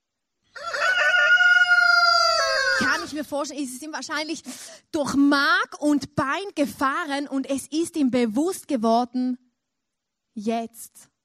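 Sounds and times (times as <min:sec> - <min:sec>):
rooster crowing: 0:00.5 - 0:03.0
speech: 0:03.2 - 0:09.4, 0:10.4 - 0:11.1.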